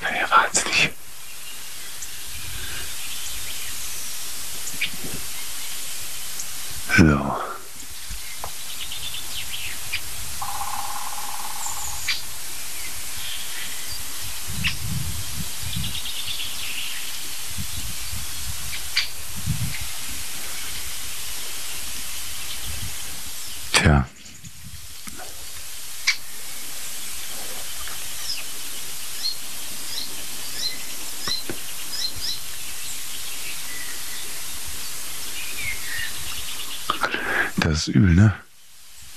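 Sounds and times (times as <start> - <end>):
Eurasian jay harsh rasping calls: 0.0 - 38.4
speech: 7.0 - 7.4, 37.8 - 38.4
steady wind rushing: 14.2 - 16.0, 17.4 - 21.0.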